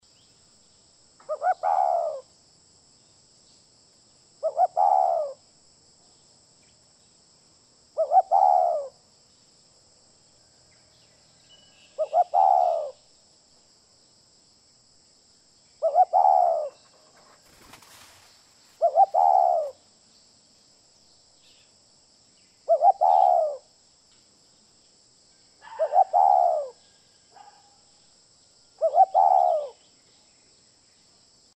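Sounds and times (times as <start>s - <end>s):
spotted dove: 1.2s - 2.3s, 4.4s - 5.4s, 8.0s - 9.0s, 11.6s - 13.0s, 15.8s - 19.8s, 22.6s - 23.7s, 25.6s - 27.9s, 28.7s - 30.0s.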